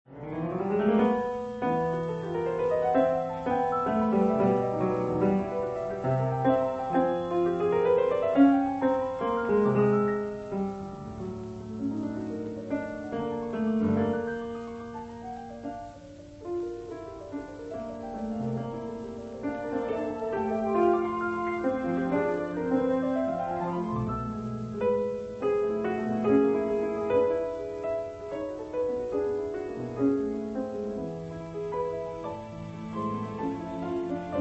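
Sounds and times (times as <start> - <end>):
piano improvisation: 0.0 - 34.3.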